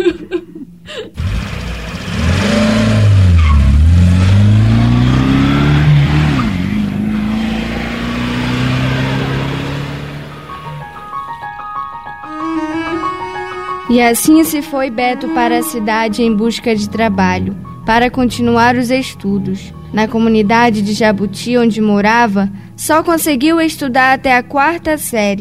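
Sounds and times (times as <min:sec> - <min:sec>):
laughter: 0:00.0 - 0:01.1
bus engine revving: 0:01.2 - 0:11.2, 0:15.3 - 0:20.7
speech: 0:14.0 - 0:25.3.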